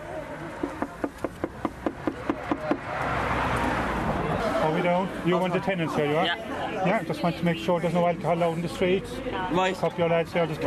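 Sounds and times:
noise: 0.0 - 10.6
knocking on a front door: 0.6 - 2.9
speech: 5.0 - 10.6.

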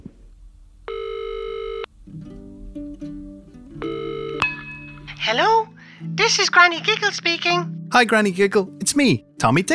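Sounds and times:
steady buzzing telephone ring tones: 0.9 - 1.9, 3.8 - 4.5
speech: 5.3 - 9.7.

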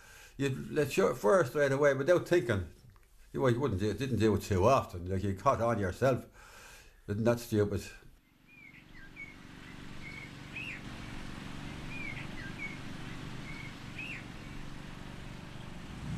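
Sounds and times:
speech: 0.4 - 6.5, 7.1 - 8.0
birds singing outdoors in a cemetery: 8.2 - 16.1
steady low motor drone: 8.3 - 16.1.

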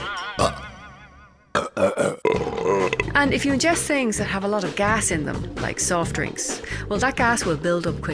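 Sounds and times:
long wavering burp and rougher burps: 0.4 - 0.8, 1.5 - 3.3
speech: 3.2 - 8.1.

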